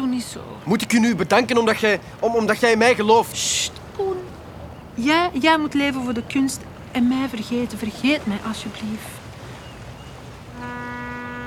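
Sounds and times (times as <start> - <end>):
speech: 0.2 - 4.2, 5.0 - 9.2
departing boat's horn blast: 10.3 - 11.4.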